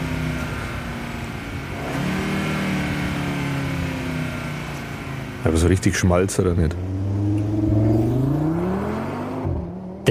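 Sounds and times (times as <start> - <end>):
five-cylinder car engine revving: 0.0 - 10.0
speech: 5.4 - 6.9.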